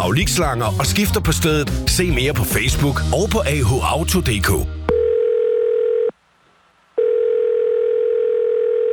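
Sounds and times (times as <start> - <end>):
speech: 0.0 - 4.8
telephone ringback tone while waiting on hold in a phone queue: 4.9 - 6.1, 7.0 - 8.9.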